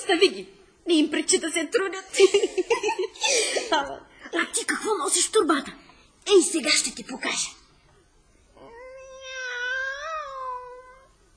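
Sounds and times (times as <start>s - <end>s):
speech: 0.1s - 7.6s
drawn-out cat meow: 8.7s - 11.2s.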